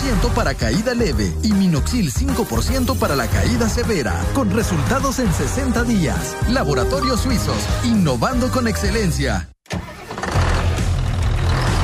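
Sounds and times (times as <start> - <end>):
speech: 0.1 - 9.8
New Holland diesel tractor engine cranking, starting and idling: 9.6 - 11.8.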